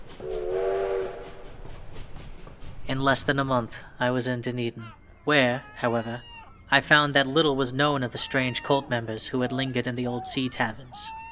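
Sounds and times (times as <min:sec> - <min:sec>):
low rumble of the moving train: 0:00.0 - 0:11.0
train horn blast: 0:00.2 - 0:01.5
speech: 0:02.9 - 0:11.2.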